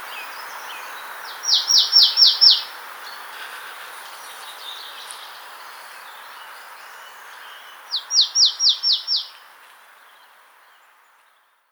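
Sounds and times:
hiss: 0.0s - 11.7s
marsh tit Poecile palustris calling: 0.2s - 3.2s, 6.9s - 9.4s.

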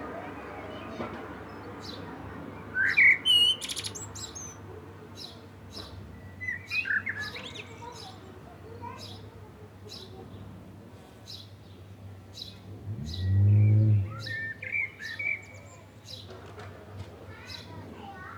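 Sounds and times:
common blackbird (Turdus merula) singing fluted phrases: 2.7s - 4.6s, 6.2s - 8.1s, 12.4s - 16.2s
deep rumbling noise: 12.8s - 14.3s.

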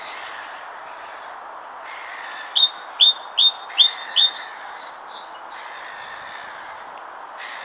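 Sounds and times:
great tit calling in paired notes: 2.3s - 5.6s.

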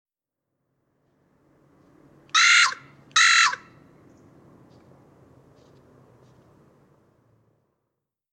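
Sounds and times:
Corvus corone carrion crow cawing: 2.3s - 3.8s.

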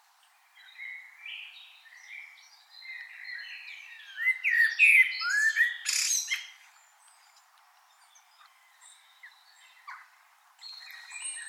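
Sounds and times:
common blackbird Turdus merula song: 0.0s - 11.4s.

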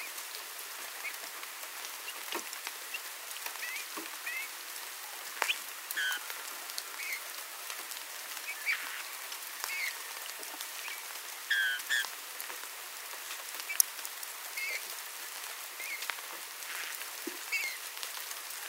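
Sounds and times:
crackling patter like rain: 0.0s - 18.6s
Eurasian bullfinch Pyrrhula pyrrhula soft whistled calls: 6.0s - 6.2s, 11.5s - 12.0s.

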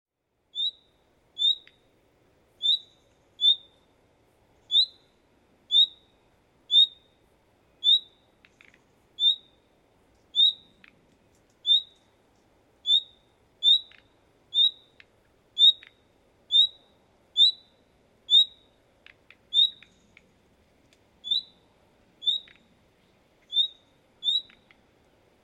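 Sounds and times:
common nightingale calling, Luscinia megarhynchos: 0.5s - 1.9s, 2.6s - 3.9s, 4.6s - 9.6s, 10.3s - 10.9s, 11.6s - 12.1s, 12.8s - 20.4s, 21.2s - 24.8s.

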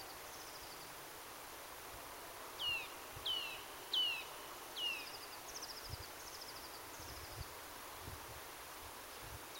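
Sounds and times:
background hiss: 0.0s - 9.5s
Eurasian nuthatch sharp falling high calls: 2.6s - 7.4s.

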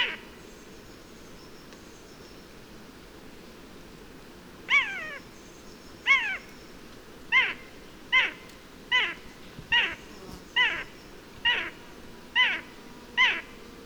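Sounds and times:
Eurasian jay Garrulus glandarius calling with down-slurred mewing notes: 0.0s - 0.3s, 4.7s - 5.3s, 6.0s - 6.5s, 7.3s - 13.6s.

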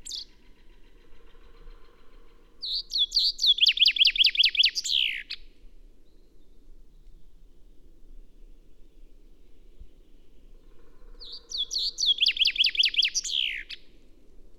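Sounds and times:
common chaffinch Fringilla coelebs singing: 0.0s - 0.4s, 2.6s - 5.4s, 11.1s - 13.9s.

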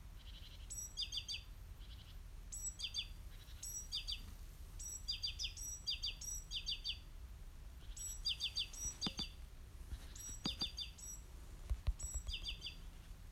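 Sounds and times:
great tit Parus major giving bright high chirping notes: 0.2s - 7.1s, 7.8s - 13.2s
sharp clicks: 9.0s - 9.3s, 10.2s - 12.7s.

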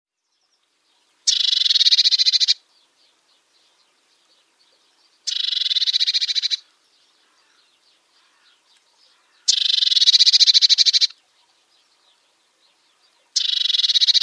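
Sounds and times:
Eurasian blue tit Cyanistes caeruleus giving harsh buzzy churring calls: 1.3s - 2.6s, 5.2s - 7.6s, 8.2s - 11.2s, 13.3s - 14.2s.

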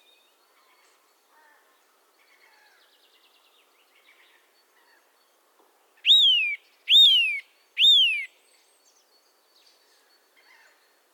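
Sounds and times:
Eurasian nuthatch Sitta europaea giving loud clear whistled calls: 6.1s - 8.3s.

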